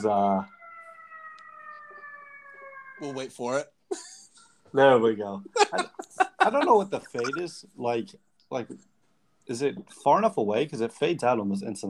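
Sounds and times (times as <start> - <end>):
speech: 0.0 - 0.6, 3.0 - 8.9, 9.5 - 11.8
emergency vehicle siren wailing outside: 0.0 - 3.3
faint street noise: 1.7 - 11.8
laughter: 5.5 - 7.5.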